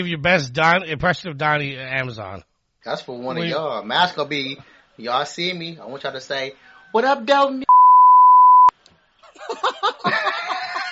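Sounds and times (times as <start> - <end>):
speech: 0.0 - 7.6
loud high-pitched beep: 7.7 - 8.7
people laughing: 9.2 - 10.9.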